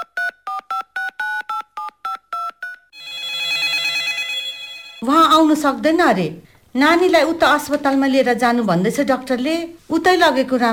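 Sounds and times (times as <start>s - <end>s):
short even phone keypad beeps: 0.0s - 2.9s
steady buzzy phone ringing tone: 0.0s - 5.3s
speech: 5.0s - 10.7s.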